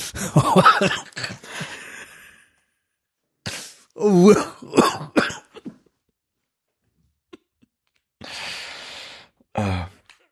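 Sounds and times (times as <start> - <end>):
person coughing and sputtering: 0.1 - 1.7, 3.5 - 5.8.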